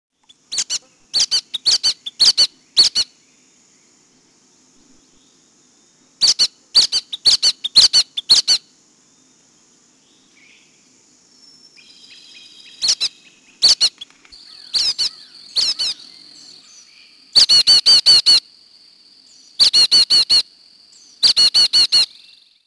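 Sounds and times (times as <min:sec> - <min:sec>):
brown-headed nuthatch: 0:00.2 - 0:03.2, 0:06.2 - 0:08.7, 0:11.8 - 0:18.4, 0:19.6 - 0:20.4, 0:21.0 - 0:22.6.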